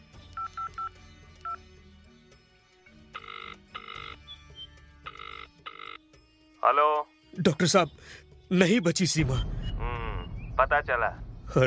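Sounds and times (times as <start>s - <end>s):
telephone keypad beeps: 0.4s - 0.9s, 3.2s - 4.2s, 5.1s - 6.0s
telephone line ringing tone pulses: 3.1s - 4.2s, 5.0s - 6.0s
speech: 6.6s - 9.7s, 10.6s - 11.6s.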